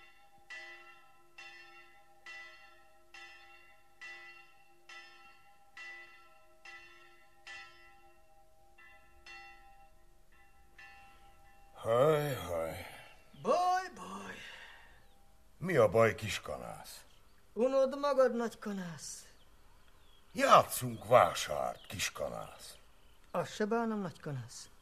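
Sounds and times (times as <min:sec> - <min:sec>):
church bell tolling: 0:00.0 - 0:17.1, 0:20.4 - 0:22.8
speech: 0:15.8 - 0:19.3, 0:20.4 - 0:22.8, 0:23.4 - 0:24.7.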